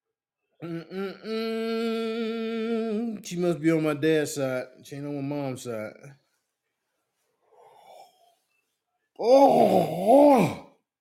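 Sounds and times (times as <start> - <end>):
speech: 0.6 - 1.8, 3.3 - 6.2, 9.2 - 10.6
long drawn-out voiced yawn: 0.6 - 3.1, 9.2 - 10.8.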